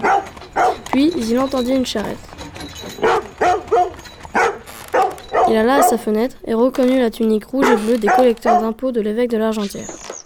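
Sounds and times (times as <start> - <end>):
dog barking: 0.0 - 1.5, 2.9 - 6.2, 7.6 - 8.8
speech: 1.0 - 2.3, 5.5 - 10.0.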